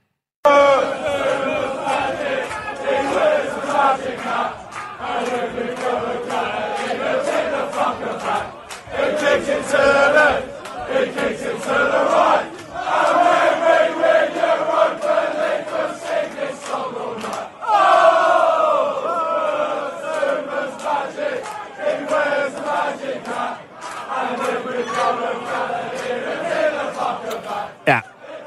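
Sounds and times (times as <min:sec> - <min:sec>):
large crowd of football fans singing a terrace chant in unison: 0:00.5 - 0:28.4
speech: 0:03.8 - 0:12.5, 0:27.2 - 0:28.1.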